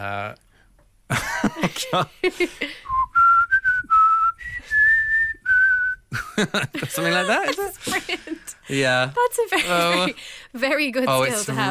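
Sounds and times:
speech: 0:00.0 - 0:00.5, 0:01.1 - 0:03.1, 0:06.4 - 0:11.6
laughter: 0:01.1 - 0:02.8, 0:06.1 - 0:08.6
person whistling a tune: 0:02.9 - 0:06.1.

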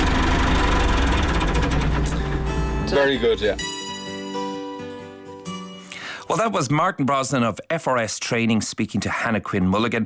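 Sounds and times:
tractor engine running during a farm safety demonstration: 0:00.0 - 0:03.6
speech: 0:02.9 - 0:03.7, 0:06.3 - 0:10.0.

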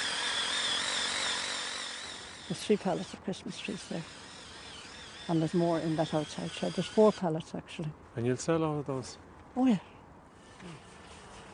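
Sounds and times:
power drill drilling into a Christmas tree trunk for a tree stand: 0:00.0 - 0:07.4
speech: 0:02.5 - 0:04.2, 0:05.3 - 0:09.9, 0:10.6 - 0:10.9.

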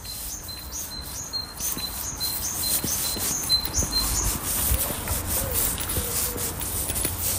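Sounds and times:
great tit singing a two-note phrase in Marino: 0:00.0 - 0:06.7
soft outdoor noise: 0:00.0 - 0:07.3
wood pigeon cooing faintly: 0:01.7 - 0:07.3.

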